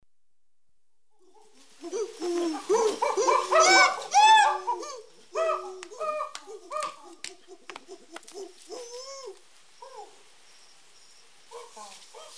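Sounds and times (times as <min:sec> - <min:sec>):
chimpanzees calling in Abuko Nature Reserve: 0:01.2 - 0:10.3.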